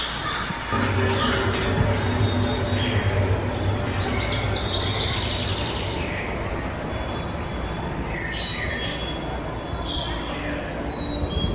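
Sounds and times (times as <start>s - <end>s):
dawn birdsong in Ontario: 0.0s - 11.5s
wind blowing through metal pipes of an installation sculpture: 0.0s - 11.5s
constant dense low rumble: 0.7s - 9.8s.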